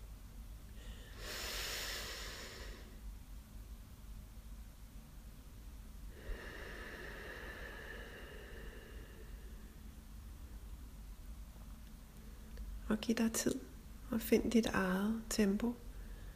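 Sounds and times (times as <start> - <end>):
quiet hiss: 0.0 - 16.3
slow deep breaths drawn in through the nose: 0.8 - 3.0, 6.1 - 9.8
speech: 12.9 - 15.8.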